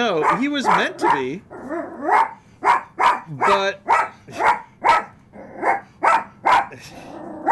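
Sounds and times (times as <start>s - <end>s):
speech: 0.0s - 2.4s, 3.3s - 4.5s
dog barking: 0.2s - 1.4s, 2.0s - 6.8s.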